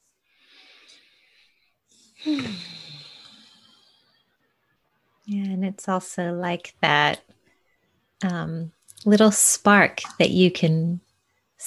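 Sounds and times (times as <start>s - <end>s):
deep breathing: 0.3s - 4.3s
speech: 2.2s - 2.8s, 5.7s - 7.3s, 8.2s - 11.0s
voiced sigh falling in pitch: 2.2s - 3.7s.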